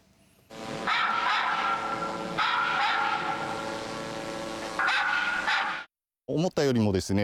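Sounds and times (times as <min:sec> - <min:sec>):
dogs barking played from a drone loudspeaker: 0:00.5 - 0:05.9.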